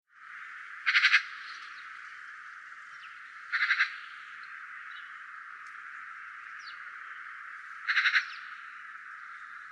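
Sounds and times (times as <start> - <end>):
Eurasian magpie chatter: 0.8 - 1.4, 3.5 - 4.1, 7.8 - 8.5.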